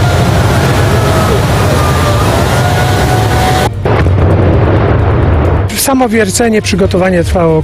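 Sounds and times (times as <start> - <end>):
50 kg dynamite blast of mine shaft tower: 0.0 - 6.0
heavy low rumble: 0.0 - 7.6
speech: 5.9 - 7.6.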